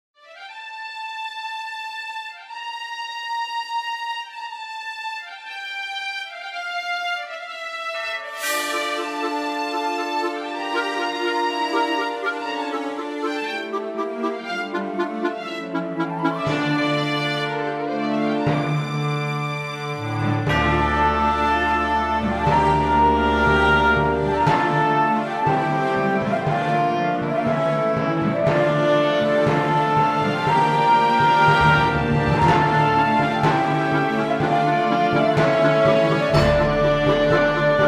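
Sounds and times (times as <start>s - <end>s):
medium tempo orchestral mystery music: 0.2s - 37.8s.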